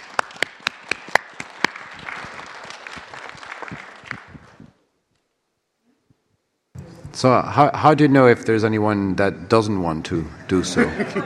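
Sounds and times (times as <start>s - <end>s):
sharp evenly spaced claps: 0.0s - 4.7s
crowd applause: 0.0s - 4.8s
speech: 7.2s - 11.2s
laughter: 10.2s - 11.2s.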